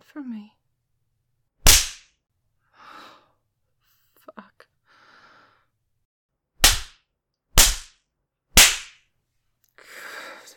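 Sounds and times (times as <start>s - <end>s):
speech: 0.1s - 0.6s
open-hand spanking slaps on bare skin: 1.6s - 2.2s, 6.6s - 7.0s, 7.6s - 8.0s, 8.6s - 9.0s.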